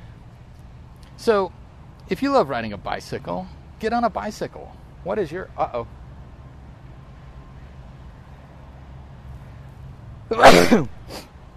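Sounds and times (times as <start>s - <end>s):
speech: 1.2s - 6.0s, 10.3s - 11.0s
person sneezing: 10.3s - 11.3s.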